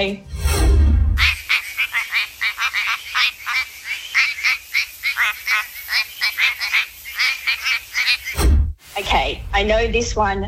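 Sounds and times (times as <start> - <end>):
speech: 0.0 - 0.3, 9.3 - 10.4
quacking frog croaking: 1.2 - 8.4.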